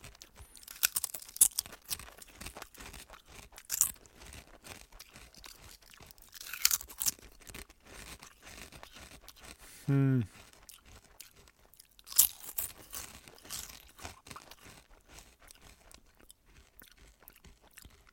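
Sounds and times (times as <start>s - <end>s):
crunching and chewing sour cream chips flavoured with onion and bacon: 0.0s - 18.1s
speech: 9.9s - 10.4s.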